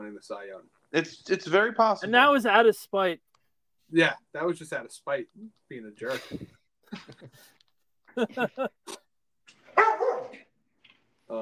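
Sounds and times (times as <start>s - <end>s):
speech: 0.2s - 3.3s, 3.9s - 7.6s, 8.2s - 9.0s, 11.3s - 11.4s
laughter: 6.0s - 9.0s
dog barking: 9.7s - 10.5s.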